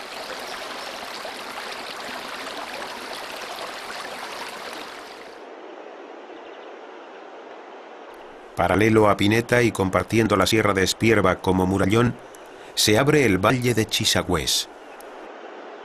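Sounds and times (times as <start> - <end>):
stream water rushing and splashing over rocks: 0.0 - 5.4
speech: 8.6 - 14.8.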